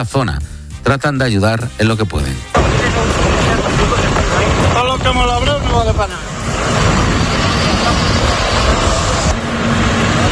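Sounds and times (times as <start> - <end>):
speech: 0.0 - 3.3, 4.6 - 6.8
helicopter rotor throb and engine drone over wildfire: 2.6 - 10.3.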